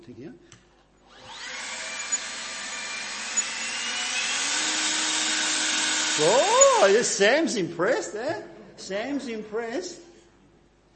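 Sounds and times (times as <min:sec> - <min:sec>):
speech: 0:00.0 - 0:00.6, 0:06.2 - 0:10.0
leaf blower running: 0:01.2 - 0:02.2, 0:03.1 - 0:07.1.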